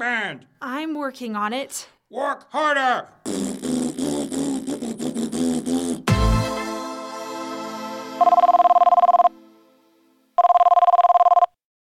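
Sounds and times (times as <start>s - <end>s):
speech: 0.0s - 6.2s
telephone ringing with buzzy electronic bursts: 8.2s - 9.4s, 10.4s - 11.6s.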